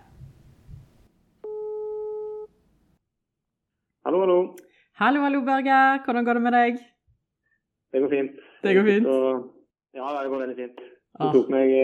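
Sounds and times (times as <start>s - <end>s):
telephone ringback tone: 1.4s - 2.5s
speech: 5.0s - 7.0s, 7.9s - 11.8s.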